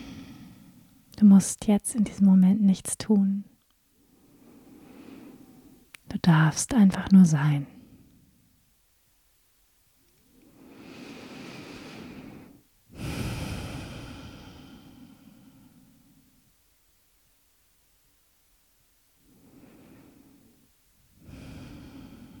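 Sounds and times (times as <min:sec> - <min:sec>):
slow deep breathing in and out: 0:00.0 - 0:01.1, 0:03.9 - 0:05.9, 0:10.2 - 0:16.6, 0:19.2 - 0:22.3
speech: 0:01.2 - 0:03.5, 0:06.2 - 0:07.8.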